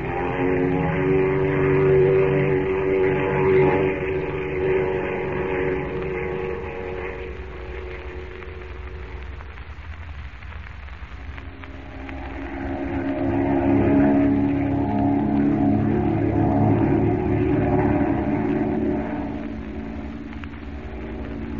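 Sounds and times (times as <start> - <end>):
airplane engine drone in Central America: 0.0 - 21.5.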